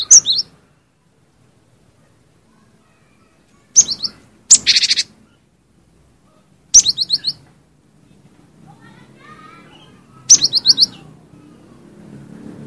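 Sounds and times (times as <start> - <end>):
cinereous tit song of high chirps: 0.0 - 0.6, 3.7 - 5.2, 6.7 - 7.5, 9.7 - 11.1.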